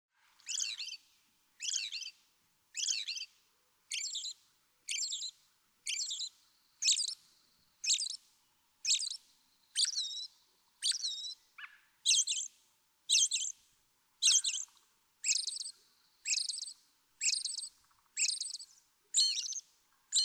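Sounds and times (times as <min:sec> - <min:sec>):
American Robin calling: 0:00.4 - 0:01.0, 0:01.6 - 0:02.1, 0:02.8 - 0:03.3, 0:03.9 - 0:05.3, 0:05.9 - 0:07.2, 0:07.8 - 0:08.2, 0:08.8 - 0:09.2, 0:09.8 - 0:12.5, 0:13.1 - 0:13.6, 0:14.2 - 0:20.2.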